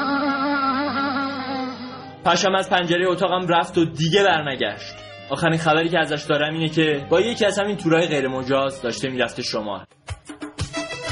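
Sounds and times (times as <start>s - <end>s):
mosquito buzzing: 0.0s - 2.2s
speech: 2.3s - 10.1s.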